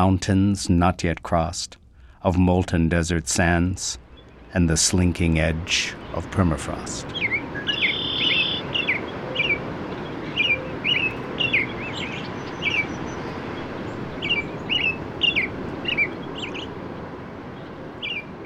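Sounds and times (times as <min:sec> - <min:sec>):
speech: 0:00.0 - 0:07.4
constant rushing ambient outdoors: 0:00.0 - 0:18.4
robin singing: 0:03.5 - 0:16.8, 0:17.5 - 0:18.4
red-winged blackbird singing: 0:05.8 - 0:16.8, 0:17.6 - 0:18.4.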